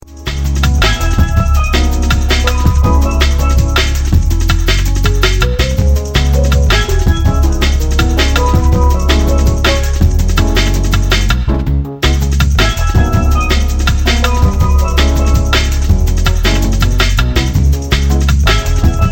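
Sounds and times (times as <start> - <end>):
marimba drum and bass music: 0.0 - 19.1.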